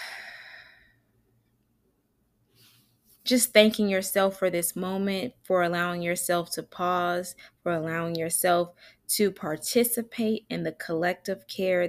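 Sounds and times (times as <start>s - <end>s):
long sigh-like exhale during a guided deep breath: 0.0s - 1.0s
speech: 3.3s - 11.8s.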